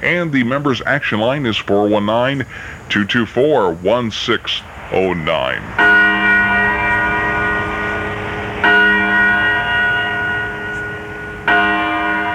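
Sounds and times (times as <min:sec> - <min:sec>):
speech: 0:00.0 - 0:06.1
church bell ringing: 0:05.4 - 0:12.3.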